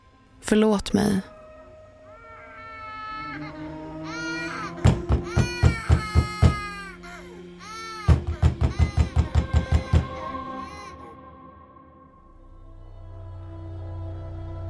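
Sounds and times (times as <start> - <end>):
speech: 0.4 - 1.3
person crying and sobbing with high wails: 2.2 - 11.2.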